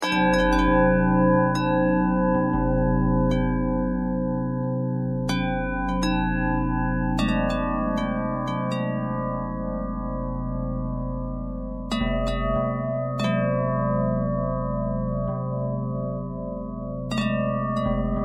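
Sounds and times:
bells with harmonic twist: 0.0 - 18.2.

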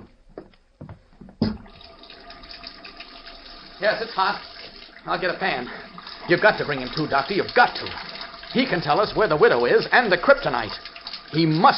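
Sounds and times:
knocks and clatters at a sink: 0.4 - 1.7
water running from a sink tap into the basin: 1.4 - 11.7
speech: 3.8 - 11.7.

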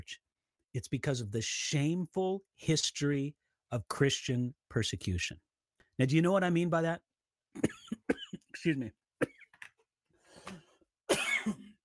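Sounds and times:
speech: 0.0 - 7.9, 8.6 - 9.3
person coughing: 7.6 - 9.6, 11.1 - 11.8.

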